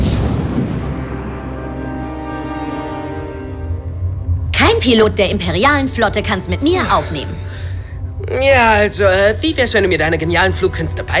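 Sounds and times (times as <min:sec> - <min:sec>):
spaceship cannon firing shots: 0:00.0 - 0:02.7
fighter explosion: 0:00.0 - 0:03.2
speech: 0:04.8 - 0:07.6, 0:08.3 - 0:11.1.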